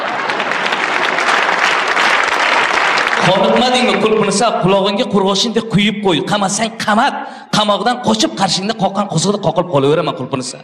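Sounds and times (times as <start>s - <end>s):
audience applause at a verse recitation: 0.0s - 4.3s
speech: 3.2s - 10.6s.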